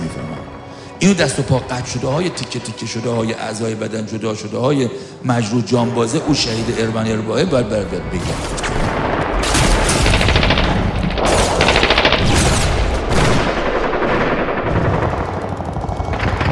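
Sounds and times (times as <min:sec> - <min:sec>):
speech: 0:01.0 - 0:08.9
simulated artillery shells booming at a war front: 0:06.3 - 0:16.4
simulated machine-gun bursts at a war front: 0:08.4 - 0:16.4.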